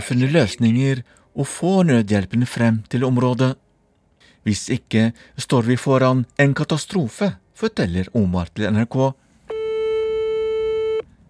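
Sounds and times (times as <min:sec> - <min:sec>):
speech: 0:00.0 - 0:03.6, 0:04.4 - 0:09.2
electronic ringback tone of an outgoing phone call: 0:09.5 - 0:11.0.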